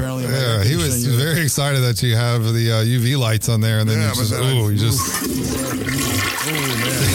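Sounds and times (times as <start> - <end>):
speech: 0.2 - 7.1
toilet flushing: 4.2 - 7.1.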